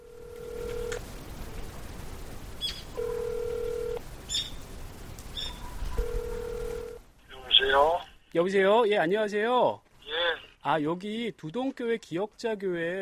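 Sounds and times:
phone line ringing while a call goes through: 0:00.0 - 0:01.0, 0:03.0 - 0:04.0, 0:06.0 - 0:07.0
birds chirping: 0:02.5 - 0:03.0, 0:04.2 - 0:04.7, 0:05.3 - 0:06.4
speech: 0:08.4 - 0:09.8, 0:10.6 - 0:12.9.

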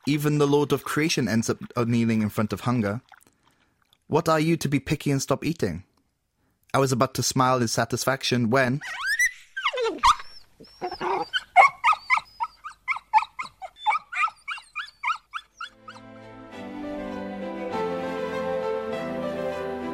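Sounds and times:
speech: 0:00.0 - 0:03.2, 0:04.1 - 0:05.9, 0:06.7 - 0:09.1
dog yelping and whimpering while thrashing: 0:08.8 - 0:16.1
music: 0:15.8 - 0:19.9.

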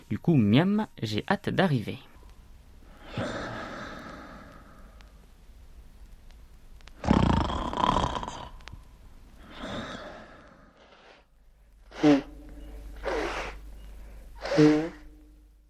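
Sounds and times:
speech: 0:00.1 - 0:02.1
woman snoring while napping on a trip: 0:02.9 - 0:04.8, 0:07.0 - 0:08.6, 0:09.4 - 0:11.3, 0:11.9 - 0:13.6, 0:14.4 - 0:15.2.

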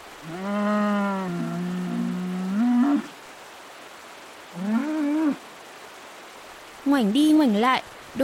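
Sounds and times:
speech: 0:00.2 - 0:00.6, 0:06.9 - 0:08.2
cow caught on riverbank rocks mooing: 0:00.2 - 0:03.1, 0:04.6 - 0:05.4.

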